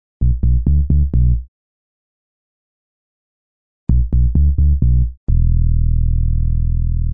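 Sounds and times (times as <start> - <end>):
simple dubby bass synth: 0.2 - 1.4, 3.9 - 7.1.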